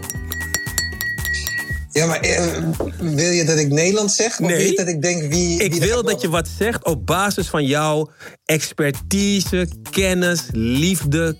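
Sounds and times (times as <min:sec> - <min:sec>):
glass ball being handled, clinking and tapping: 0:00.0 - 0:01.9
speech: 0:02.0 - 0:11.3.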